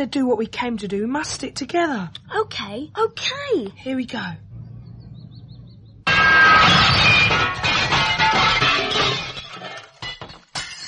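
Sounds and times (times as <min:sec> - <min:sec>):
speech: 0:00.0 - 0:04.5
glass shards tinkling and clattering down: 0:06.1 - 0:10.8
window glass breaking as a stone hits it: 0:06.1 - 0:10.8.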